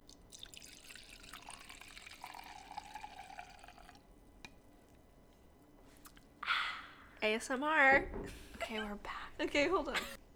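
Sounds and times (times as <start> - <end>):
wine being poured into a glass: 0.0 - 4.2
speech: 7.2 - 10.2.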